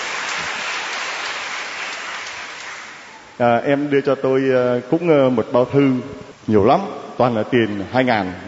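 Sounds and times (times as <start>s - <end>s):
audience applauding: 0.0s - 3.4s
speech: 0.4s - 0.7s, 3.4s - 8.4s.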